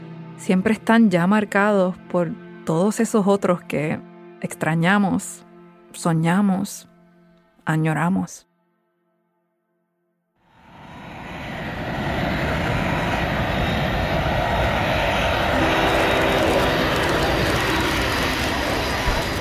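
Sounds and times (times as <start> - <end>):
speech: 0.4 - 6.9, 7.7 - 8.5
aircraft engine roar during landing: 10.5 - 19.3.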